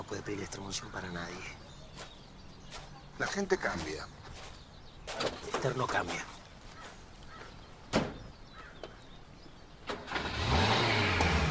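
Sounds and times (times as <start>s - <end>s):
speech: 0.2s - 2.1s, 3.2s - 4.4s, 5.2s - 6.3s
car door thuds: 7.9s - 8.3s
car engine starting and revving as the vehicle pulls away: 9.8s - 11.5s.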